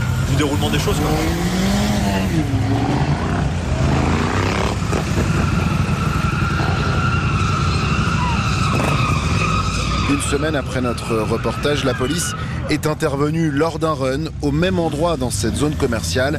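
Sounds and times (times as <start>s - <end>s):
car tires screeching and skidding during an illegal street race: 0.0s - 13.8s
dense road noise: 0.0s - 16.3s
roaring car engine: 0.0s - 16.3s
speech: 0.3s - 3.3s, 10.1s - 16.3s.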